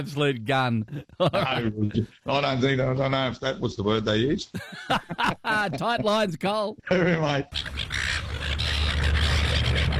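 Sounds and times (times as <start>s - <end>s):
speech: 0.0s - 8.2s
laughter: 0.9s - 1.9s, 4.6s - 6.3s
seagulls squawking: 7.5s - 9.9s
steady low outdoor rumble: 7.8s - 9.9s.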